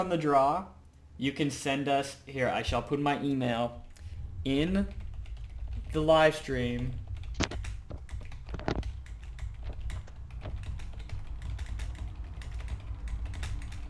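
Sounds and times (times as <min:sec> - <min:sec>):
speech: 0:00.0 - 0:05.0, 0:05.9 - 0:07.5
low hum: 0:00.0 - 0:13.8
typing on a computer keyboard posting to a live stream chat: 0:04.8 - 0:13.8.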